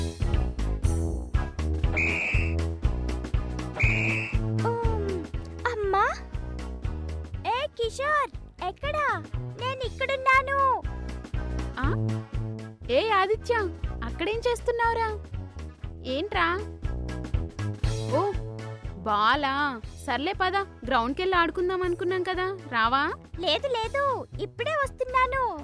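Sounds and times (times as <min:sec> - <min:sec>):
busy steady music: 0:00.0 - 0:25.6
person whistling to call a friend outside: 0:01.9 - 0:02.6, 0:03.8 - 0:04.5
speech: 0:13.3 - 0:15.3, 0:16.0 - 0:17.3, 0:18.1 - 0:18.4, 0:19.1 - 0:25.6.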